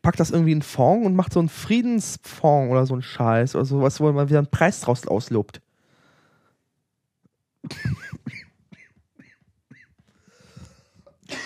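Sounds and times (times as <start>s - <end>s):
speech: 0.1s - 5.6s
person coughing at home: 7.6s - 10.0s, 11.3s - 11.4s.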